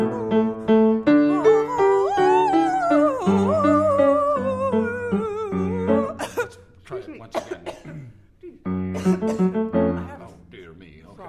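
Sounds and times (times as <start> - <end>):
hummed voiced tones: 0.0 - 6.2
several people coughing and clearing their throats: 5.8 - 10.3.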